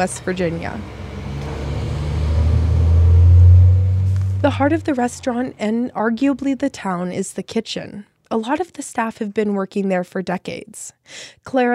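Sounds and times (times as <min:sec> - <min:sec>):
speech: 0:00.0 - 0:01.0, 0:04.4 - 0:11.7
logging truck engine roaring while driving by: 0:00.0 - 0:05.8.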